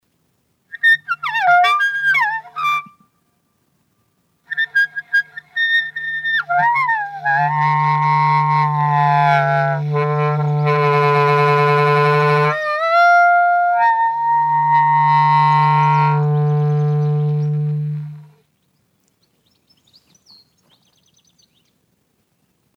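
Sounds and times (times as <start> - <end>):
clarinet playing rough short intervals into the wind: 0.7 - 3.2, 4.4 - 18.4.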